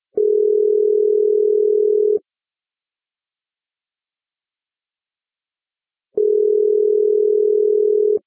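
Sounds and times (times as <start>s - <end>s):
telephone ringback tone: 0.2s - 2.2s, 6.2s - 8.2s.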